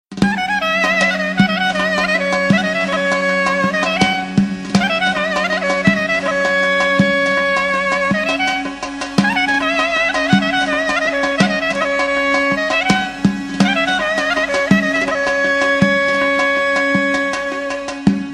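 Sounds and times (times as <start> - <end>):
dhol drum: 0.1 - 18.3.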